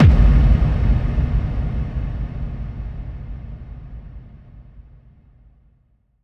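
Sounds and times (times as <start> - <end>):
kick drum effect: 0.0 - 4.6.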